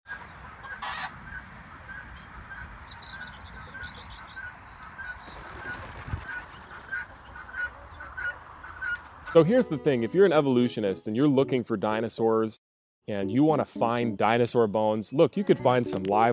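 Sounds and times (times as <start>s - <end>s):
flock of poultry honking and clucking: 0.1s - 9.8s
chicken wings flapping as it flies up: 5.2s - 7.6s
speech: 9.3s - 16.3s.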